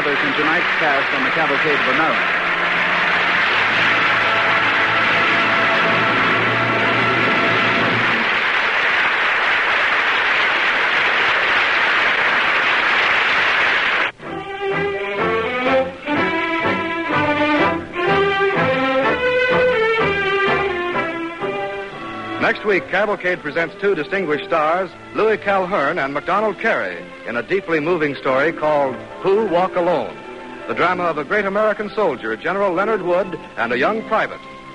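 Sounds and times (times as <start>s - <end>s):
orchestra playing: 0.0s - 10.2s, 13.2s - 34.7s
large theater audience applauding: 0.0s - 22.9s
speech: 0.2s - 2.8s, 22.7s - 34.7s.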